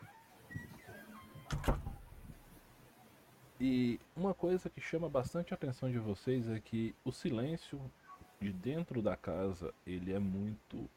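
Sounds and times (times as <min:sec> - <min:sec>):
door swung shut with a solid thud: 0:01.4 - 0:02.4
door rattling as it settles: 0:01.5 - 0:02.2
speech: 0:03.6 - 0:10.9.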